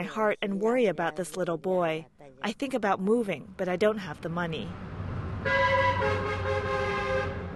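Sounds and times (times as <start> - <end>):
speech: 0.0 - 6.8
coal-transporting trucks thundering past a house: 4.2 - 7.5
heavy coal truck horn blaring: 5.4 - 7.5.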